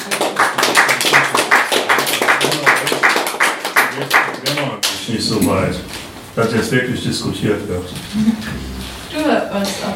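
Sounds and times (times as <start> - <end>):
small group hand clapping: 0.0 - 5.1
speech: 5.3 - 9.9.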